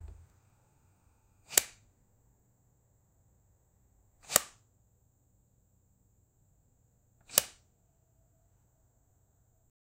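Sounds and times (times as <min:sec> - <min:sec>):
flashlight switching on: 0:07.2 - 0:07.6.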